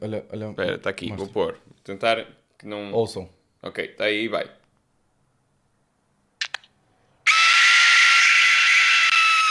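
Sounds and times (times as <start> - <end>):
speech: 0.0 - 4.6
quick clicks: 6.4 - 6.7
wind whistle blowing a piercing shriek imitating a woman screaming: 7.3 - 9.4.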